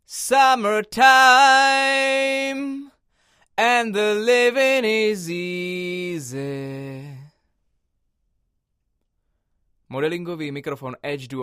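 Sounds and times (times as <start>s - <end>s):
vocal recorded on an AKG C414 cardioid microphone: 0.1s - 2.9s, 3.6s - 7.4s.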